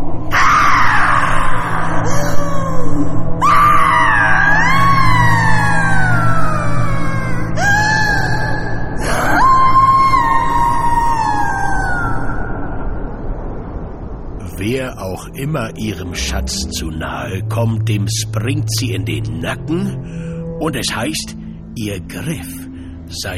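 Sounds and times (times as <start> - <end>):
steady low rumble: 0.0 - 23.2
voice imitating the ghostly wail of a woman: 0.3 - 12.6
speech: 15.2 - 23.3.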